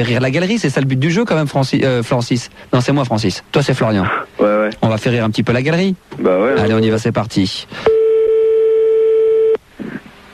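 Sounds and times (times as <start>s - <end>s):
speech: 0.0s - 7.9s
telephone busy signal: 7.9s - 9.6s.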